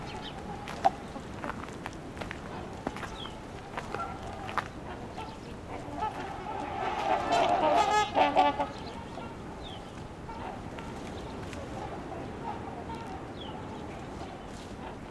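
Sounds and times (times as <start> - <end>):
house sparrows chirping: 0.0 - 1.4, 2.5 - 6.4, 7.3 - 14.8
waterfowl honking: 0.0 - 1.6, 2.4 - 15.0.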